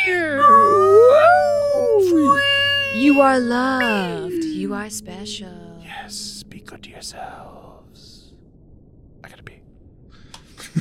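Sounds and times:
whale calls: 0.0s - 6.6s
speech: 3.2s - 7.6s.

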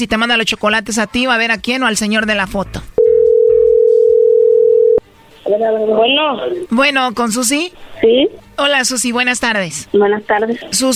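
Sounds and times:
speech: 0.0s - 2.9s, 5.5s - 10.9s
telephone dial tone while placing a call: 3.0s - 5.0s.

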